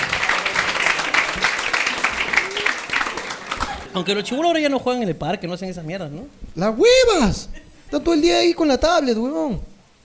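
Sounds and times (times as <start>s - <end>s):
audience applause: 0.0s - 4.1s
speech: 4.0s - 9.7s.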